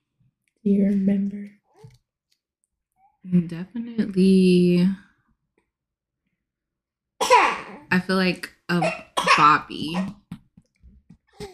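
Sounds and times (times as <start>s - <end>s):
speech: 0.6s - 2.0s, 3.3s - 5.0s, 8.1s - 10.2s
newborn baby sputtering choking cough: 7.2s - 7.9s, 8.7s - 10.3s, 11.4s - 11.5s.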